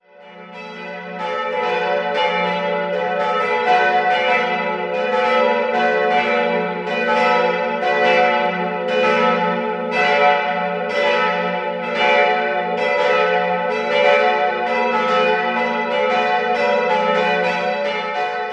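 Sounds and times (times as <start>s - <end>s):
three church bells of a parish church in Oberstimm ringing: 0.0s - 18.5s.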